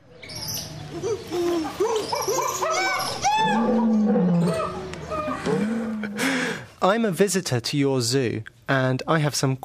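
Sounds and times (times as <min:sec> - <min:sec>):
voices imitating zoo animal roars, hoots and howling calls: 0:00.2 - 0:06.2
speech: 0:06.8 - 0:09.6.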